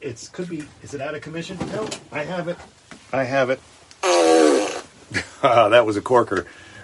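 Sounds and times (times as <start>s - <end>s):
speech: 0.0s - 4.4s, 5.1s - 6.6s
fart machine sound effects: 4.0s - 5.0s.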